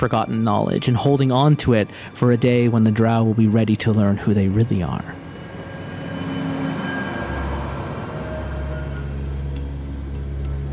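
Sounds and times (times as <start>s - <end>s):
speech: 0.0s - 5.2s
deep drone: 0.0s - 10.7s
cavernous rumble in an empty underground subway tunnel: 2.0s - 10.7s
faint metallic ringing tones: 4.6s - 10.1s.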